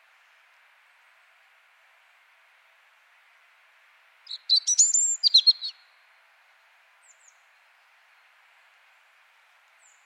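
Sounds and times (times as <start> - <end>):
European robin Erithacus rubecula song phrase: 4.3 - 5.8.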